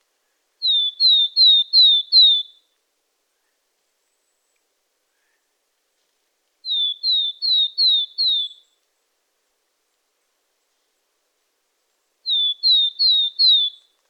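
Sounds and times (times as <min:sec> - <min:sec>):
Poecile montanus willow tit clear downslurred whistled notes: 0:00.6 - 0:02.7, 0:06.6 - 0:08.8, 0:12.3 - 0:14.0.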